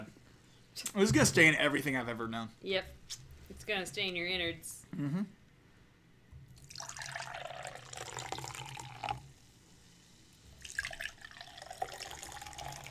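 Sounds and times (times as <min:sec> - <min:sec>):
speech: 0:00.8 - 0:05.4
beer pouring from a can into a glass: 0:06.6 - 0:09.6, 0:10.5 - 0:12.8.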